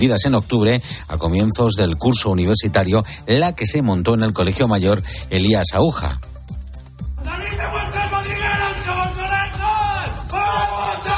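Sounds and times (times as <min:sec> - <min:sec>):
speech: 0:00.0 - 0:06.3
large crowd of students chanting at a university residence hall: 0:07.2 - 0:11.1.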